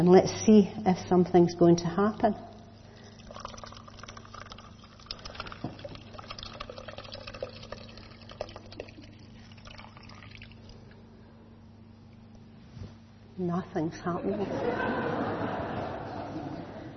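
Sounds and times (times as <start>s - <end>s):
speech: 0.0s - 2.5s, 13.7s - 15.6s
water pouring into a container: 2.9s - 10.9s
laughter: 14.2s - 16.9s.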